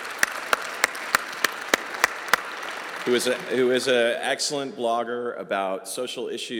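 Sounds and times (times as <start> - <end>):
sharp evenly spaced claps: 0.0 - 3.5
crowd applauding: 0.0 - 4.2
speech: 3.1 - 6.5.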